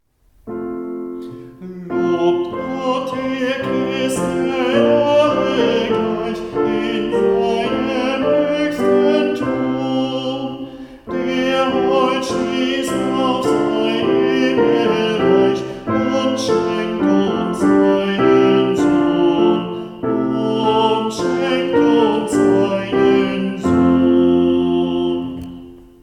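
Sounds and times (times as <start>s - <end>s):
soprano singing: 0.5s - 26.0s.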